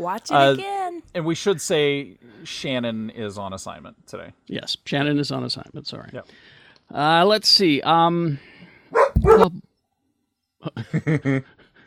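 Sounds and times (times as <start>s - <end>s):
speech: 0.0s - 8.6s, 9.3s - 9.7s, 10.6s - 11.6s
dog barking: 8.9s - 9.6s
laughter: 10.7s - 11.7s.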